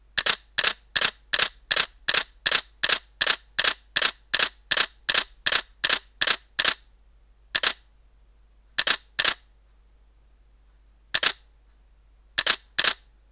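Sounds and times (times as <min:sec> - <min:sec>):
Nikon D300 camera shutter continuous shooting: 0:00.2 - 0:06.8, 0:07.6 - 0:07.8, 0:08.8 - 0:09.4, 0:11.2 - 0:11.5, 0:12.4 - 0:13.1.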